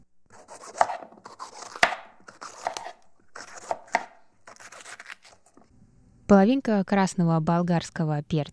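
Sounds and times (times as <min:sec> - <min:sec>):
knife slicing celery stalks on a cutting board: 0:00.3 - 0:05.6
speech: 0:06.3 - 0:08.5.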